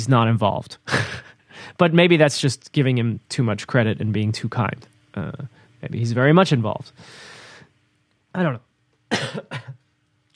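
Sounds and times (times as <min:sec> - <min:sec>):
speech: 0:00.0 - 0:07.3, 0:08.4 - 0:09.8
faint low hum: 0:00.0 - 0:10.3
small breath: 0:07.0 - 0:07.8
person coughing: 0:09.1 - 0:09.8.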